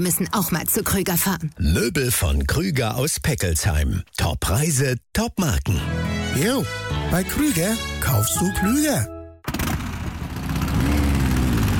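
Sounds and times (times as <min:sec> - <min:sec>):
speech: 0:00.0 - 0:09.2
vintage motorcycle engine running at a classic motorcycle exhibition: 0:09.4 - 0:11.7.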